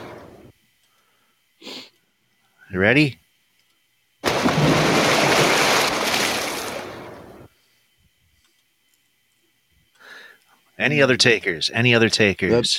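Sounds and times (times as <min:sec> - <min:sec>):
speech: 0:02.7 - 0:03.2, 0:10.8 - 0:12.7
splash of someone diving into water: 0:04.2 - 0:07.4.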